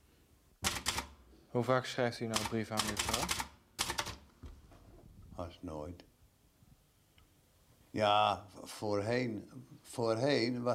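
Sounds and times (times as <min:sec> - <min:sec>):
typewriter key strikes: 0:00.6 - 0:01.1, 0:02.3 - 0:04.2
speech: 0:01.5 - 0:03.5, 0:05.4 - 0:06.1, 0:07.9 - 0:10.7.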